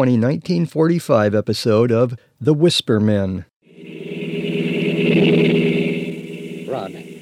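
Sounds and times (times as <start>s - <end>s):
speech: 0.0s - 3.5s
car engine roaring at high speed: 3.7s - 7.1s.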